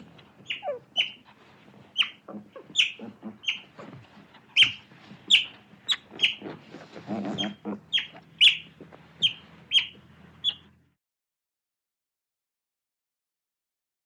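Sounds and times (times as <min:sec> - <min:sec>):
otter calling with bright high chirps: 0:00.4 - 0:01.2, 0:02.0 - 0:10.7.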